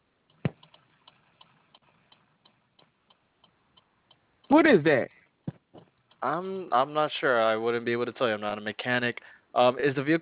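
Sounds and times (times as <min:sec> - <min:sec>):
car dashboard ticking on a car that won't start: 0:00.3 - 0:04.6
speech: 0:04.5 - 0:05.2, 0:06.2 - 0:10.2.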